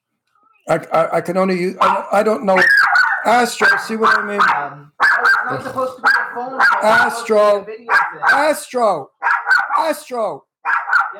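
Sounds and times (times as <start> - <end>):
speech: 0.7 - 9.2, 9.8 - 10.5
dog barking at a window: 1.8 - 7.3, 7.9 - 10.0, 10.6 - 11.1.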